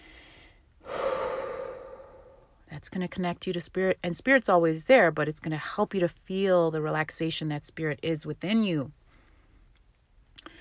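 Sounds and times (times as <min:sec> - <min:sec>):
deep slow breathing during guided relaxation: 0:00.0 - 0:02.6
speech: 0:02.8 - 0:09.0.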